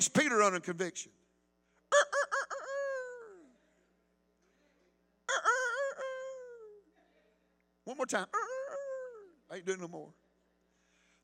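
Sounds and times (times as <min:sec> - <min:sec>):
speech: 0:00.0 - 0:01.2, 0:07.9 - 0:08.6, 0:09.5 - 0:10.2
man's voice imitating a rooster crowing: 0:01.9 - 0:03.4, 0:05.3 - 0:06.8, 0:08.2 - 0:09.4.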